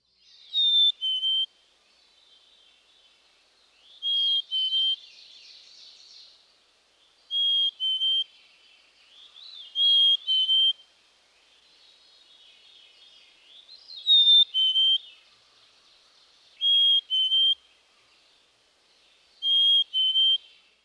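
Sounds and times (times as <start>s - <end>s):
black-capped chickadee two-noted whistle song: 0.5s - 1.5s, 4.0s - 5.0s, 7.3s - 8.3s, 9.7s - 10.8s, 14.0s - 15.1s, 16.6s - 17.6s, 19.4s - 20.5s.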